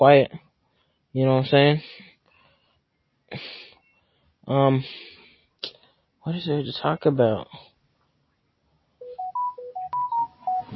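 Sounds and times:
speech: 0.0 - 0.4, 1.2 - 2.1, 4.5 - 5.1, 6.3 - 7.7
mobile phone ringtone with electronic melody: 9.0 - 10.7.

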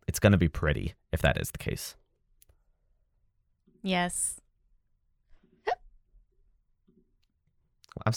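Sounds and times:
speech: 0.2 - 2.0, 3.8 - 4.4, 8.0 - 8.1
hiccup: 5.7 - 5.9.

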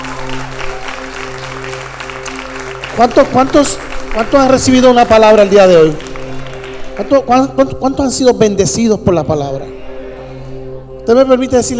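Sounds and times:
applause for a woman at a church service: 0.0 - 7.1
speech: 3.0 - 6.1, 7.0 - 9.8, 11.1 - 11.7.

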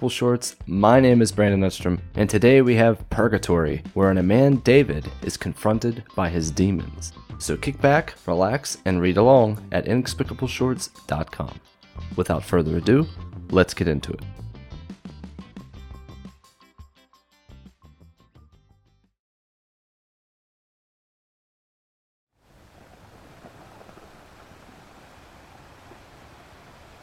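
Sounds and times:
speech: 0.0 - 14.4
short music passage: 0.0 - 19.2
waves breaking on a shore: 22.4 - 27.0.

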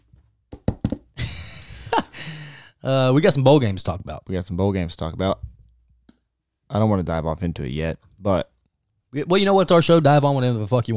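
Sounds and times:
knocking on wood: 0.5 - 1.1
speech: 2.8 - 5.5, 6.7 - 8.5, 9.1 - 10.9.

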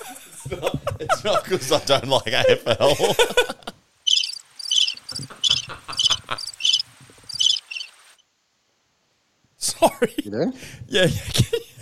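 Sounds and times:
laughter: 0.0 - 3.8, 5.1 - 6.6, 11.0 - 11.8
speech: 0.5 - 3.6, 9.8 - 11.7
cricket chirping sound effect from a mixer preset: 4.1 - 8.2.

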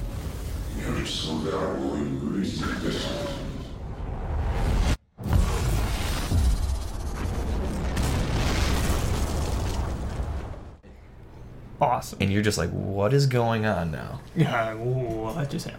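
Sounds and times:
loud fiery explosion: 0.0 - 10.8
sustained crackling rumble of the explosion: 0.0 - 10.8
speech: 1.0 - 3.4, 12.0 - 15.7.

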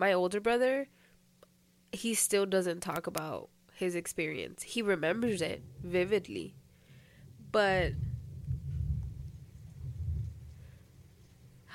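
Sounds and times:
speech: 0.0 - 1.0, 1.9 - 6.6, 7.5 - 8.1
low rolling thunder from a storm in Los Angeles: 5.2 - 11.7.

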